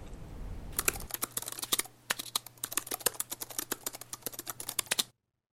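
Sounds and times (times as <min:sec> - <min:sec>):
typing on a laptop keyboard: 0:00.8 - 0:05.1.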